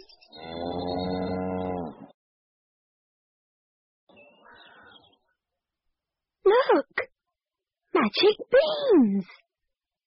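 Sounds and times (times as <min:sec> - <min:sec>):
cow mooing: 0:00.4 - 0:02.1
speech: 0:08.3 - 0:09.4.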